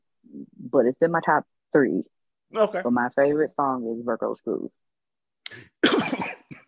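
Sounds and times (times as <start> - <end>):
speech: 0.7 - 4.8
person coughing: 5.8 - 6.6.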